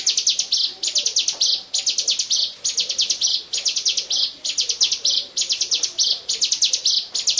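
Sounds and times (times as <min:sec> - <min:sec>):
bar-winged prinia delivering loud high-pitched trilled phrases: 0:00.0 - 0:07.3.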